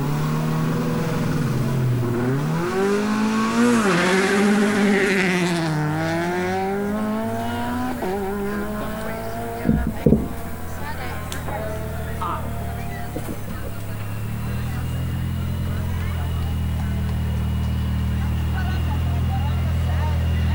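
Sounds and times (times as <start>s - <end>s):
Peugeot 208 Rally4 rally car engine revving: 0.0s - 20.5s
sharp pops from Peugeot 208 Rally4 rally car engine: 9.6s - 11.6s.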